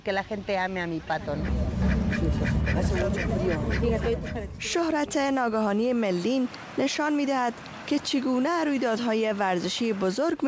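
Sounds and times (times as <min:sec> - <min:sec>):
speech: 0:00.0 - 0:10.4
pet duck quacking: 0:01.3 - 0:04.6.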